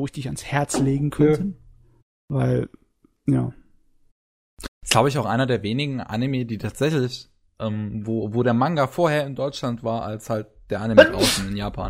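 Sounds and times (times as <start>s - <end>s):
speech: 0.0s - 1.6s, 2.3s - 3.6s, 4.8s - 11.8s
person sneezing: 11.0s - 11.5s.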